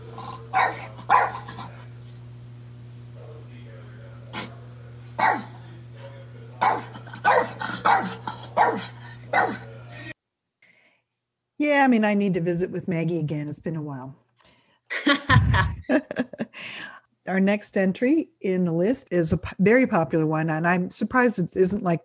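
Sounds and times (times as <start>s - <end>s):
steady low hum: 0.0s - 10.1s
dog barking in short sharp bursts: 0.2s - 1.8s, 5.2s - 5.6s, 6.6s - 9.7s
speech: 11.8s - 14.2s, 17.3s - 22.0s
laughter: 14.9s - 16.6s.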